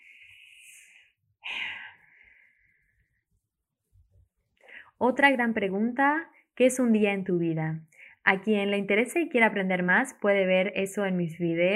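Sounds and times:
airy deep breath: 0.0 - 3.2
speech: 5.0 - 11.7.

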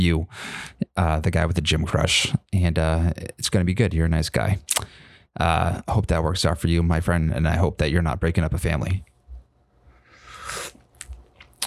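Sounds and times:
speech: 0.0 - 9.1
slurping sip of hot coffee: 10.2 - 10.9.

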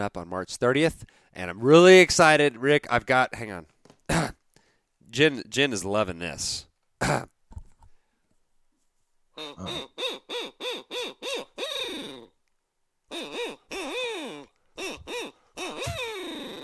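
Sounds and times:
speech: 0.0 - 4.4, 5.1 - 7.4, 9.4 - 12.3
owl hoots blown on an owl call: 9.4 - 12.4, 13.1 - 16.6.

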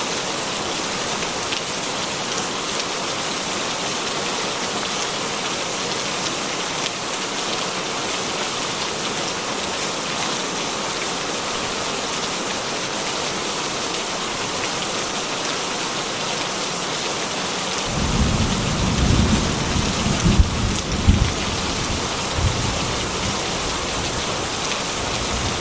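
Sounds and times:
heavy rain pouring on a farm at night: 0.0 - 25.5
deep rumbling thunder over a farm at night: 17.9 - 23.3.

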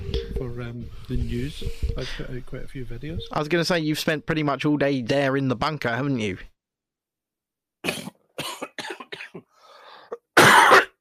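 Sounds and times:
speech: 0.6 - 6.5
person coughing: 7.8 - 9.5, 10.1 - 10.9.

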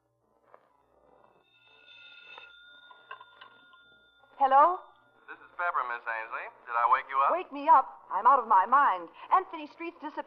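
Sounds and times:
telephone ringing with bright trilling bell: 1.3 - 5.9
speech: 4.4 - 4.9, 5.6 - 10.2.

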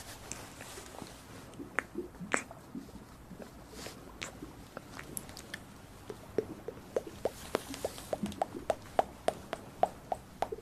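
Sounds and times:
wet mouth clicks and smacks: 1.5 - 2.6, 4.2 - 10.6.

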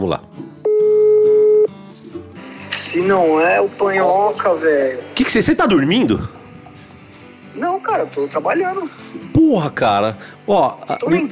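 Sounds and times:
speech: 0.0 - 0.6, 2.9 - 6.4, 7.8 - 11.3
messaging app call dialing tone beep: 0.6 - 1.7.

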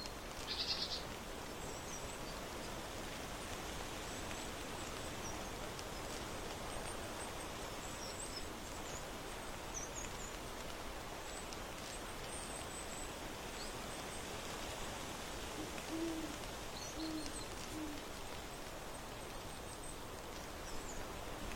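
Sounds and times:
steady dense soft rustling hiss on an autumn porch: 0.0 - 21.5
soft low hoot-like calls: 15.6 - 18.1.

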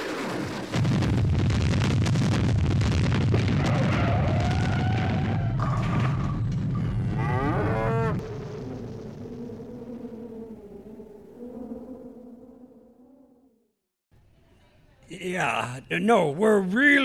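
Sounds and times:
roaring explosion from superhero colliding with comet: 0.0 - 11.0
low drawn-out lowing tones: 6.3 - 13.6
speech: 15.2 - 17.0.

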